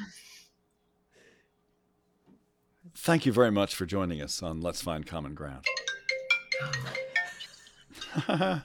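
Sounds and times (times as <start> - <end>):
speech: 2.9 - 5.8, 6.6 - 7.0, 8.1 - 8.6
mobile phone ringtone with bright melodic electronic tune: 5.7 - 7.7.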